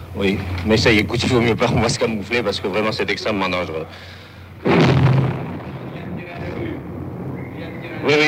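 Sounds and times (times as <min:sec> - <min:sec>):
speech: 0:00.2 - 0:05.0, 0:08.0 - 0:08.2
tank machine gun firing during combat: 0:04.6 - 0:07.1.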